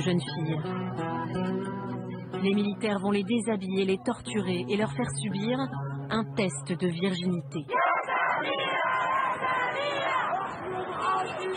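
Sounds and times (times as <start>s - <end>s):
speech: 0.0s - 1.8s, 2.4s - 7.8s
crowd chanting a name outside courthouse: 7.7s - 11.5s.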